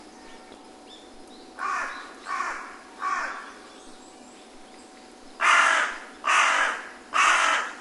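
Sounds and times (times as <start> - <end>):
carrion crow calling with harsh caws: 1.6 - 3.4, 5.4 - 7.7.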